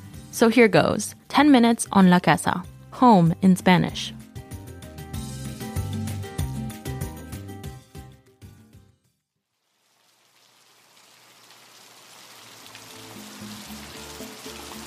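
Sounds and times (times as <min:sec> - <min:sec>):
music: 0:00.0 - 0:09.2, 0:12.8 - 0:14.8
speech: 0:00.4 - 0:04.2
heavy pouring rain: 0:09.6 - 0:14.8.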